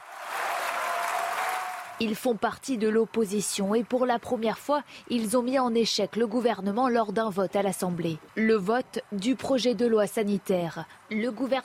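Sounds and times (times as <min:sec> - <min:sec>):
applause of deputies in parliament chamber: 0:00.0 - 0:02.0
speech: 0:02.0 - 0:11.6.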